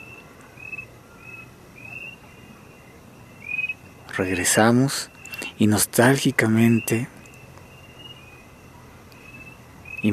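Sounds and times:
birds chirping in a park: 0:00.0 - 0:10.1
soft outdoor hiss: 0:00.0 - 0:10.1
speech: 0:04.2 - 0:07.2.

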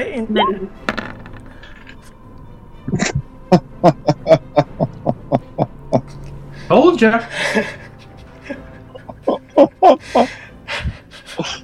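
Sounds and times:
speech: 0:00.0 - 0:01.0, 0:02.9 - 0:04.0, 0:07.0 - 0:07.8, 0:09.6 - 0:10.4
twenty-sided die tossed onto a hard surface: 0:00.8 - 0:01.9
laughter: 0:02.9 - 0:06.3, 0:07.2 - 0:11.6.

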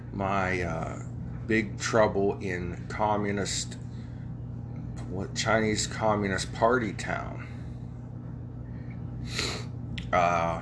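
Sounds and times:
speech: 0:00.2 - 0:03.9, 0:05.1 - 0:07.5, 0:09.2 - 0:09.5, 0:10.1 - 0:10.6
breathy nasal sniff: 0:09.3 - 0:09.7.

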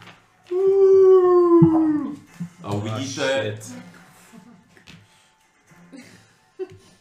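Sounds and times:
dog howling: 0:00.5 - 0:02.2
speech: 0:03.0 - 0:04.0.

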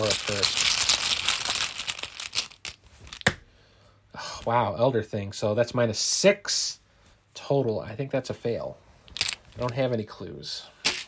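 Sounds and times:
bag rustling and crinkling as someone rummages to draw a game token: 0:00.0 - 0:03.2, 0:09.2 - 0:09.7
speech: 0:00.2 - 0:00.6, 0:04.4 - 0:06.8, 0:07.4 - 0:08.8, 0:09.6 - 0:10.8.

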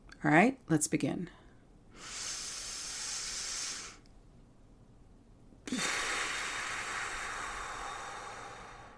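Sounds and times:
speech: 0:00.2 - 0:01.4
slow deep breathing, inhaling and exhaling: 0:01.4 - 0:04.1, 0:05.7 - 0:08.9.

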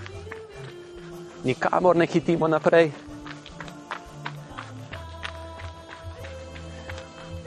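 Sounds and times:
jogging footsteps: 0:00.0 - 0:07.4
soft music: 0:00.0 - 0:07.4
speech: 0:01.4 - 0:03.0.

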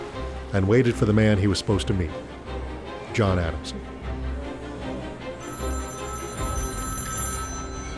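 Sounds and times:
speech: 0:00.5 - 0:02.4, 0:03.2 - 0:03.9
telephone bell ringing at a hotel lobby front desk: 0:05.4 - 0:07.9.

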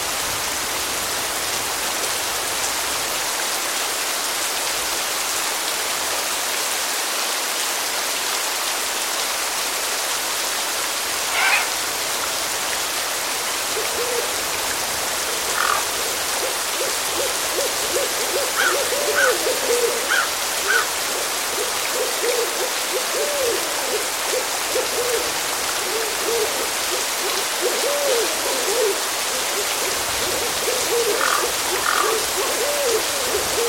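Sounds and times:
gentle rain falling in a cemetery: 0:00.0 - 0:33.6
crows calling: 0:11.2 - 0:11.8, 0:15.4 - 0:17.8, 0:18.4 - 0:22.5, 0:30.4 - 0:33.4
owl hoots: 0:11.2 - 0:11.8, 0:15.5 - 0:33.6.

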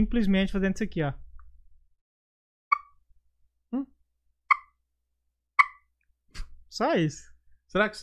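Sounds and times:
speech: 0:00.0 - 0:01.2, 0:06.7 - 0:08.0
small ball-shaped turkey call device clucks imitating a turkey: 0:02.7 - 0:03.0, 0:04.5 - 0:04.7, 0:05.6 - 0:05.9.

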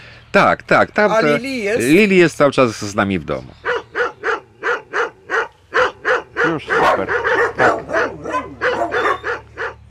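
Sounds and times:
speech: 0:00.4 - 0:03.6, 0:06.6 - 0:07.8
Cane Corso dog barking: 0:03.6 - 0:09.8.

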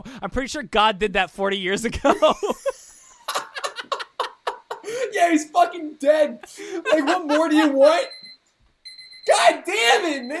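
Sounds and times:
speech: 0:00.1 - 0:02.8, 0:05.2 - 0:08.2, 0:09.3 - 0:10.3
laughter: 0:01.9 - 0:05.0, 0:06.5 - 0:08.0
phone alarm electronic tone beeping: 0:07.1 - 0:10.3.

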